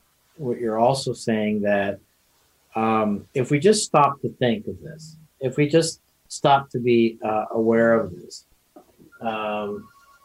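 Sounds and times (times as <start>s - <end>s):
speech: 0.4s - 2.1s, 2.8s - 8.5s, 9.2s - 9.9s
faint steady beep: 9.0s - 10.2s
phone ringing with a short bright electronic tone: 9.0s - 10.2s.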